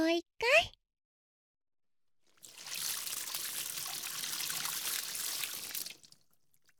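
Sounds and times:
warm water poured to rinse soap off a person being bathed: 2.3s - 6.7s.

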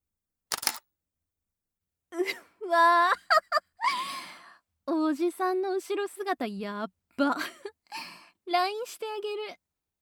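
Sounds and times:
camera shutter taking a photo in a video game: 0.5s - 0.8s
speech: 2.2s - 3.2s, 5.1s - 7.8s, 8.5s - 9.6s.

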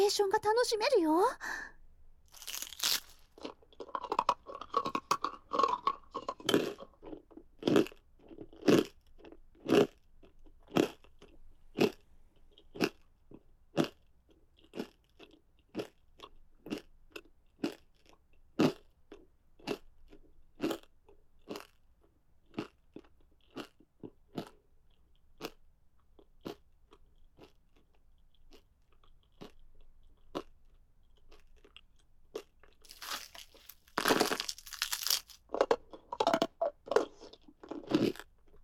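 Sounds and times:
speech: 0.1s - 1.8s
sharp crunches of foot bones: 2.4s - 6.9s, 32.9s - 37.1s
chewing on foot bones: 2.4s - 38.6s.

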